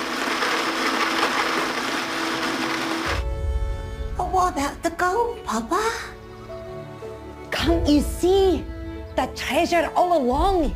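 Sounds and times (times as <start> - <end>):
blender whirring with grinding motor roar: 0.0 - 3.2
speech: 4.5 - 6.2, 7.6 - 10.7.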